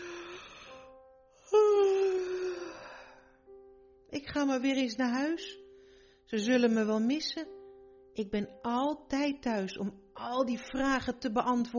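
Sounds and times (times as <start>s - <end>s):
person imitating drawn-out yawns: 1.4s - 3.2s
speech: 4.1s - 5.6s, 6.3s - 7.6s, 8.2s - 11.7s.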